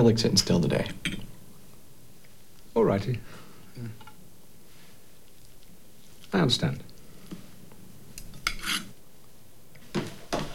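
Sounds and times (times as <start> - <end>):
speech: 0.0 - 1.1, 2.8 - 4.0, 6.3 - 6.9
dirty dishes clattering and clinking: 9.9 - 10.5.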